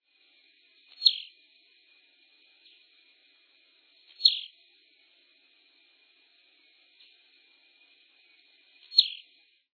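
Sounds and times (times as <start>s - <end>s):
tiziu bird: 0.9s - 1.4s, 4.1s - 4.6s, 8.8s - 9.4s.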